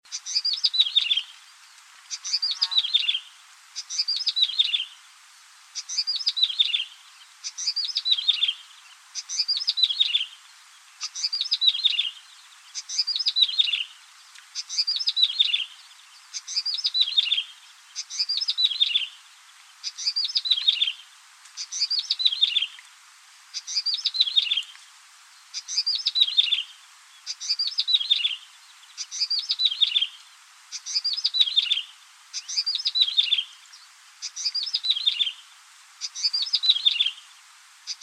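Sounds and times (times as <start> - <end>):
prenjak rawa warbler calling: 0.1 - 1.4, 2.1 - 5.0, 5.8 - 14.0, 14.6 - 19.2, 19.8 - 21.0, 21.6 - 22.8, 23.6 - 24.8, 25.4 - 35.4, 36.0 - 37.3, 37.9 - 38.0.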